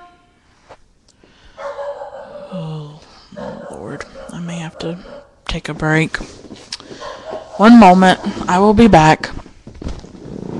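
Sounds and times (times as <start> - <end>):
dog barking: 1.6 - 5.4, 7.0 - 8.5
speech: 4.0 - 6.4, 7.6 - 9.4.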